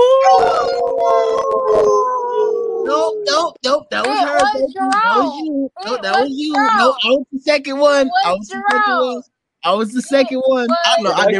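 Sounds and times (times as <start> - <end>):
excited chatter: 0.0 - 2.0, 2.8 - 9.2, 10.0 - 11.3
several people howling like wolves in a drinking game: 0.0 - 7.0
people laughing: 3.3 - 7.2
speech: 4.7 - 11.3.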